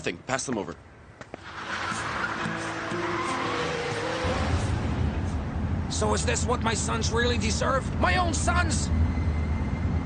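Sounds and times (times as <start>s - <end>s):
speech: 0.0s - 0.9s, 6.0s - 9.2s
car tires skidding: 1.4s - 6.9s
racing car engine droning: 1.4s - 10.0s.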